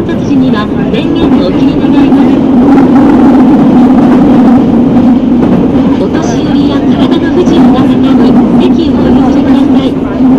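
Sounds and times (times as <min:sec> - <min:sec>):
subway train running between stations: 0:00.0 - 0:10.3
speech: 0:00.1 - 0:03.2.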